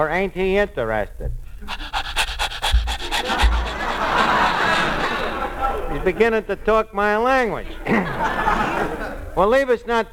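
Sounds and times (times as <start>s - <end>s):
speech: 0.0s - 1.8s, 6.0s - 10.1s
dog panting: 1.6s - 5.4s
laughter: 2.4s - 6.2s, 7.8s - 9.3s.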